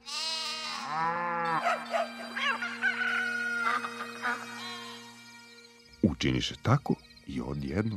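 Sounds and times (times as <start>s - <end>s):
sheep bleating: 0.0s - 5.0s
farm animal bellowing: 0.7s - 5.0s
farm animal cackling: 0.8s - 5.2s
speech: 0.9s - 2.2s, 6.2s - 7.9s
rooster crowing: 1.1s - 5.0s
dog barking: 1.5s - 2.2s.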